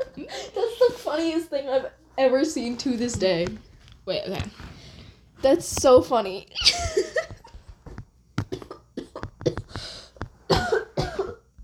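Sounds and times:
speech: 0:01.1 - 0:04.7, 0:05.4 - 0:07.0
person coughing: 0:08.4 - 0:09.8, 0:10.4 - 0:11.5
gasping breaths: 0:09.5 - 0:10.3.

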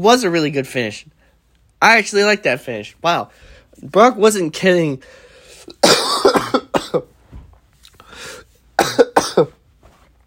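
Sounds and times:
speech: 0:00.0 - 0:01.2, 0:01.8 - 0:05.2, 0:06.9 - 0:07.1
person coughing: 0:05.6 - 0:07.1, 0:08.3 - 0:09.6
person clearing throat: 0:05.7 - 0:07.1, 0:08.8 - 0:09.6.

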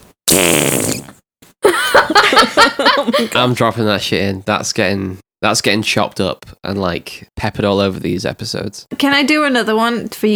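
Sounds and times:
wet sputtering fart noise blown with the mouth: 0:00.0 - 0:01.6
laughter: 0:01.6 - 0:03.6
speech: 0:03.0 - 0:10.3.

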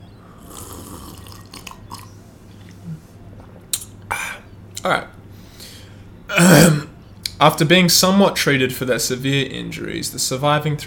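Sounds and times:
low hum: 0:00.0 - 0:10.8
slurping sips of tea: 0:00.4 - 0:02.1
speech: 0:04.8 - 0:05.2, 0:06.3 - 0:06.8, 0:07.4 - 0:10.8.

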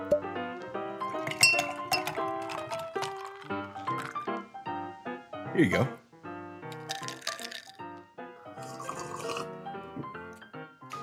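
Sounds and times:
non-alcoholic cranberry and Concord drink being poured into a glass: 0:00.1 - 0:04.5, 0:06.7 - 0:10.5
glassware clinking together: 0:00.6 - 0:04.3, 0:06.7 - 0:07.7, 0:08.6 - 0:09.5
speech: 0:05.5 - 0:06.0.

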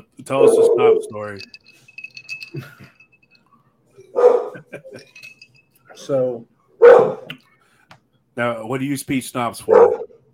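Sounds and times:
speech: 0:00.2 - 0:01.9, 0:02.5 - 0:02.9, 0:04.2 - 0:05.4, 0:06.0 - 0:07.4, 0:08.4 - 0:10.0
pit bull barking: 0:04.1 - 0:04.6, 0:06.8 - 0:07.3, 0:09.7 - 0:10.2.

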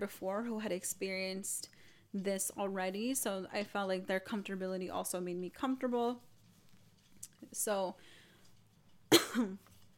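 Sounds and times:
speech: 0:00.0 - 0:06.3, 0:07.4 - 0:08.2, 0:09.1 - 0:09.7
person coughing: 0:09.1 - 0:09.7.

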